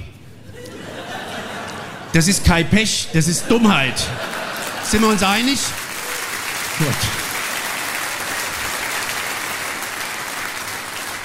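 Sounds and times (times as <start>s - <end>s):
laughter: 0.4s - 6.2s
speech: 2.1s - 5.8s, 6.8s - 7.2s
audience applause: 4.2s - 11.2s.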